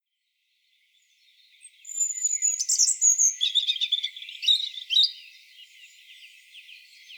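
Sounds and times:
European robin Erithacus rubecula singing: 0:01.6 - 0:07.1.

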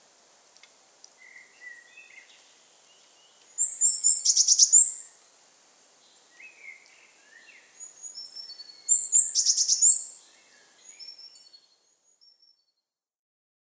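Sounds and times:
Eurasian blue tit soft lower chirps: 0:01.2 - 0:05.2, 0:06.3 - 0:12.5.

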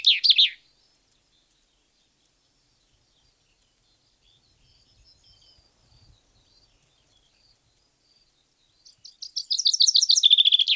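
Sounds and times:
Common chaffinch Fringilla coelebs song: 0:00.0 - 0:10.7.

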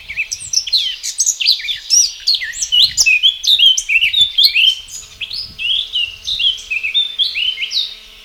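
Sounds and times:
Sylvia atricapilla Eurasian blackcap singing a warble: 0:00.0 - 0:08.2
faint hum: 0:00.0 - 0:08.2.

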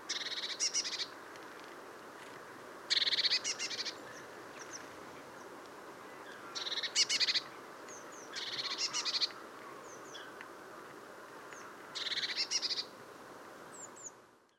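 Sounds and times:
soft background hiss: 0:00.0 - 0:14.5
Eurasian blue tit giving quick high churring notes: 0:00.1 - 0:01.1, 0:02.9 - 0:04.0, 0:06.6 - 0:07.5, 0:08.2 - 0:09.4.

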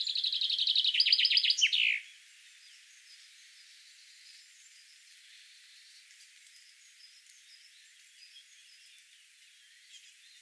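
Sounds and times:
common chaffinch song phrase: 0:00.0 - 0:02.1.

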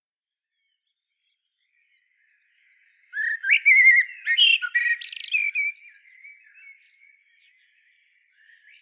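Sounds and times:
common blackbird Turdus merula calls: 0:03.2 - 0:06.7.

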